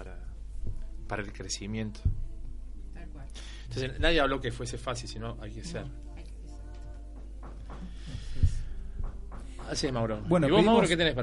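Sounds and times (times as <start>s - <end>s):
low hum: 0.0s - 11.2s
speech: 1.1s - 2.2s, 3.4s - 6.1s, 9.7s - 11.2s
hammering from nearby construction work: 6.8s - 10.6s.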